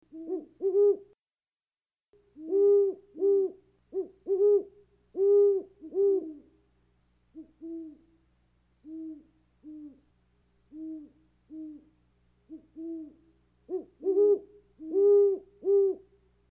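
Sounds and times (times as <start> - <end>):
great horned owl: 0.1 - 1.1, 2.4 - 6.6, 7.3 - 8.2, 8.8 - 10.1, 10.7 - 16.1.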